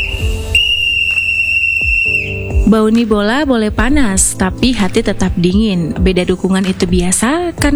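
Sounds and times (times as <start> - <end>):
referee's whistle blast: 0.0 - 2.7
dull thuds: 0.0 - 7.7
speech: 2.7 - 7.7.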